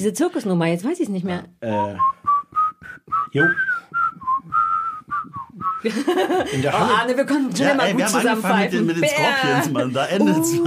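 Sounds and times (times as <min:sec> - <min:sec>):
speech: 0:00.0 - 0:04.0, 0:05.6 - 0:10.6
person whistling a quick bouncy tune: 0:01.7 - 0:05.9
laughter: 0:05.8 - 0:10.6.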